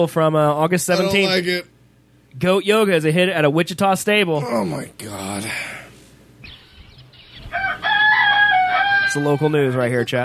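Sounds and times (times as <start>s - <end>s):
speech: 0.0s - 1.7s, 2.3s - 5.7s, 9.2s - 10.2s
rooster crowing at a horse stable: 7.3s - 10.1s.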